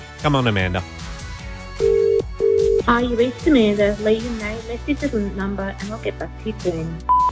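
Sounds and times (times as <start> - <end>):
music: 0.0 - 7.3
telephone ringing heard over the line: 1.8 - 2.9.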